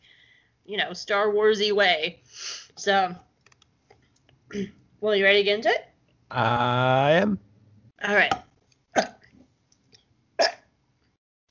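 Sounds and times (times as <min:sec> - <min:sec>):
speech: 0:00.7 - 0:03.3, 0:04.5 - 0:09.1
small wet burps: 0:09.0 - 0:09.3, 0:10.4 - 0:10.7.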